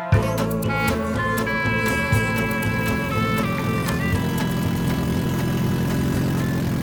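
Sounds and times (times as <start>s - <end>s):
car engine roaring without a catalytic converter, failing exhaust system: 0.1s - 6.8s
failing car exhaust crackles: 0.1s - 6.8s.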